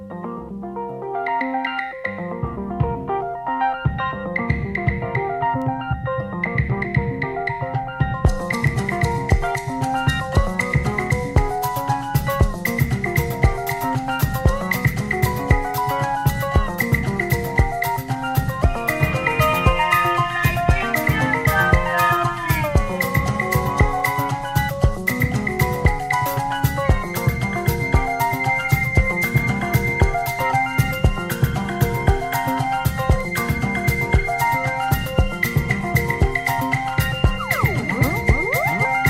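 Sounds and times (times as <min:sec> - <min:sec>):
bright synthesizer arpeggiator in a pop song: 0:00.0 - 0:39.0
crisp high percussion: 0:03.9 - 0:39.0
steady beat: 0:08.0 - 0:39.0.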